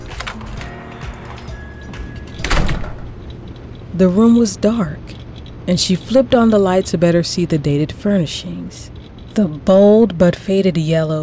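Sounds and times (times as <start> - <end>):
motel room door giving way with a thud and creak: 1.2 - 3.9
motel room door rattling and knocking in its frame while being forced open: 2.3 - 3.7
speech: 4.0 - 5.1, 5.7 - 11.2.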